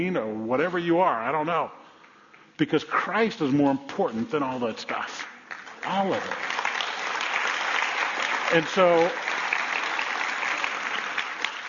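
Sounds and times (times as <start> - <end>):
speech: 0.0 - 1.8, 2.6 - 6.6, 8.5 - 9.3
audience clapping: 4.9 - 11.6.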